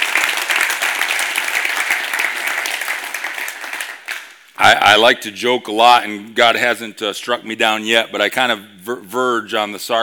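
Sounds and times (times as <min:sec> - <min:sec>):
loud dense audience applause: 0:00.0 - 0:04.4
speech: 0:04.7 - 0:10.0.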